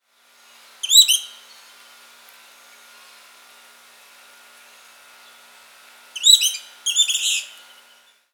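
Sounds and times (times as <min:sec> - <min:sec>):
giant kingbird calling: 0:00.8 - 0:01.6, 0:06.2 - 0:08.1.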